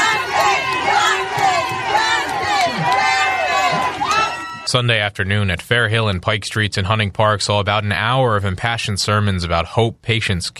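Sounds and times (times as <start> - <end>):
crowd of more than 100 people calling out and chattering outdoors: 0.0 - 5.0
speech: 4.7 - 10.5.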